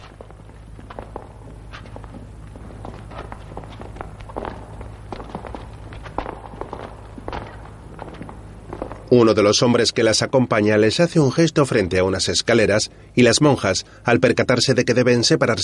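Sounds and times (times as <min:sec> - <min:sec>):
footsteps of several people walking into a castle: 0:00.0 - 0:10.4
low steady hum: 0:00.0 - 0:15.6
speech: 0:09.1 - 0:15.6.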